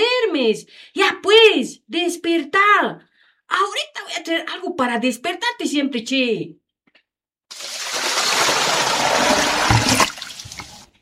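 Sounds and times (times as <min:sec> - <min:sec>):
speech: 0:00.0 - 0:06.6
bucket of cold water thrown: 0:07.5 - 0:11.0.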